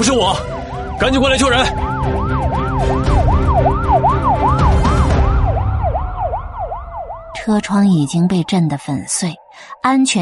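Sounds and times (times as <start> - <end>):
police car siren wailing at the scene of a car crash: 0.0 - 10.2
speech: 0.1 - 1.9, 7.5 - 10.2.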